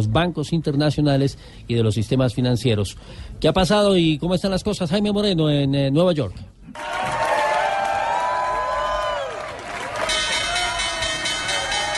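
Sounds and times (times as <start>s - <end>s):
speech: 0.0s - 7.2s
crowd clapping and cheering: 6.7s - 11.9s
New York Stock Exchange closing bell ringing on Wall Street: 10.1s - 11.9s.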